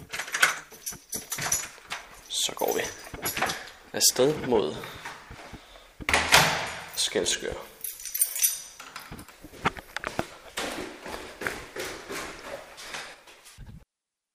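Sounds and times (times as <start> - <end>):
keys jingling and clinking: 0.0 - 5.4, 6.3 - 10.0
door opening and closing: 0.0 - 7.0, 8.4 - 11.1
speech: 4.0 - 5.0, 7.1 - 7.7.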